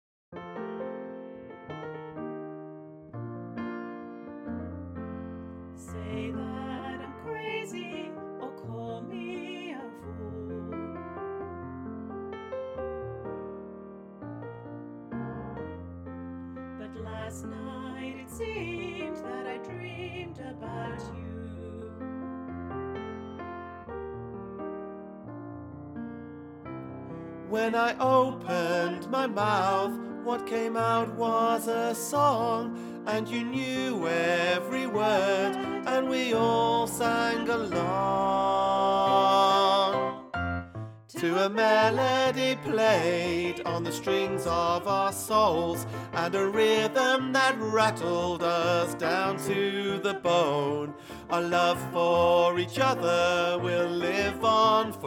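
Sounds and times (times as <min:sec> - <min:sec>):
baritone voice singing a learning track: 0:05.8 - 0:10.8, 0:16.8 - 0:22.0, 0:27.5 - 0:40.3, 0:41.1 - 0:55.0.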